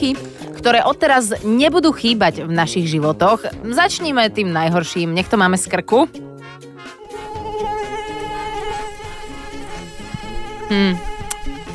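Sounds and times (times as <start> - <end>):
speech: 0.0 - 6.3, 10.7 - 11.1
mosquito buzzing with a thin high whine: 6.1 - 11.7.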